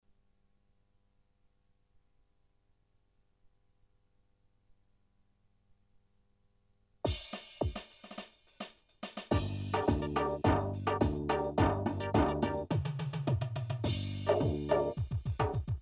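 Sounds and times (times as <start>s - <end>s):
halay rhythm: 7.1s - 15.8s.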